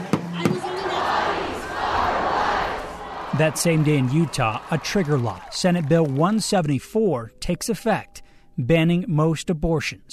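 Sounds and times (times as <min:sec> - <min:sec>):
large crowd of protesters roaring and chanting at an abortion-rights protest: 0:00.2 - 0:05.5
speech: 0:03.4 - 0:10.1.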